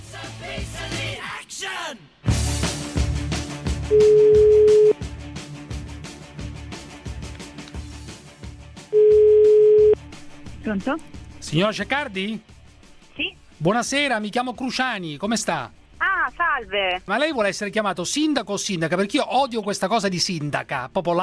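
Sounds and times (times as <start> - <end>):
rhythmic music: 0.0 - 21.2
speech: 3.9 - 4.3, 10.7 - 12.5, 13.2 - 21.2
telephone ringback tones of an outgoing call: 3.9 - 5.0, 9.0 - 10.0.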